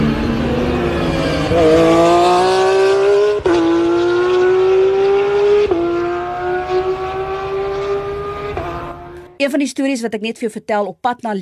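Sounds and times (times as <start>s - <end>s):
race car engine whine: 0.0s - 9.4s
speech: 1.5s - 1.8s, 9.7s - 11.3s.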